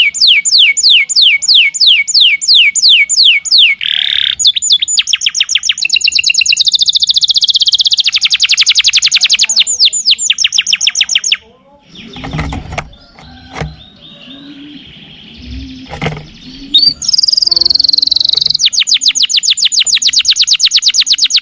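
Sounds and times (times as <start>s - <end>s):
lovebird lure call shrill chirps in fast trills: 0.1s - 11.4s, 16.6s - 21.4s
low noises: 11.4s - 18.8s.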